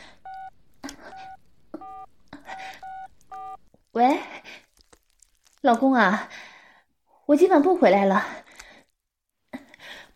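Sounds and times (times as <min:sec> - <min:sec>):
mobile phone touch-tone beeps from keying in a number: 0:00.2 - 0:03.6
speech: 0:05.6 - 0:06.4, 0:07.3 - 0:08.4.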